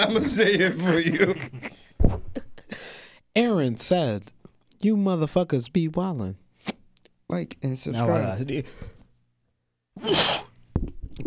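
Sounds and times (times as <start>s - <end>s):
speech: 0.0s - 2.2s, 3.4s - 8.9s
laughter: 0.0s - 2.8s
person sneezing: 10.0s - 10.6s.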